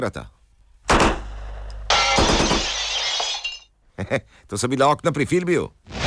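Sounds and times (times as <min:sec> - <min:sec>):
speech: 0:00.0 - 0:00.4, 0:04.0 - 0:05.9
hand grenades exploding after being thrown from a hotel: 0:00.9 - 0:03.7.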